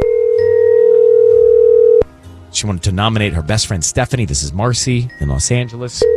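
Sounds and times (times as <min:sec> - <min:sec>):
telephone dial tone of outgoing call: 0:00.0 - 0:02.0
speech: 0:02.6 - 0:06.1.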